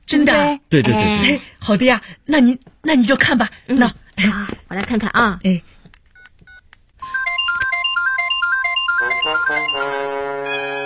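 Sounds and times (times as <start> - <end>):
speech: 0.1 - 5.8, 9.2 - 10.8
mobile phone ringtone: 7.0 - 10.8.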